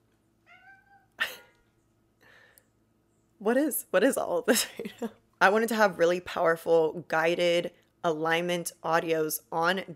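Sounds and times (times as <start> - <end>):
quiet hum: 0.0 - 9.9
male cat meowing: 0.4 - 1.2
speech: 3.4 - 9.9.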